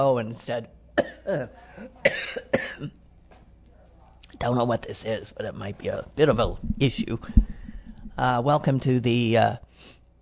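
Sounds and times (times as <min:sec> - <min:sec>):
speech: 0:00.0 - 0:03.0, 0:04.4 - 0:07.6, 0:08.2 - 0:10.0
person coughing: 0:01.0 - 0:03.0
softer trailing breath: 0:07.2 - 0:08.2.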